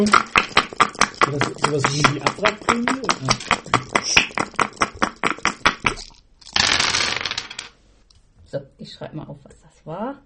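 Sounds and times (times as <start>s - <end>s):
speech: 0.0s - 0.3s, 1.3s - 4.3s, 9.0s - 10.2s
dice being rolled and clattering: 0.0s - 7.8s.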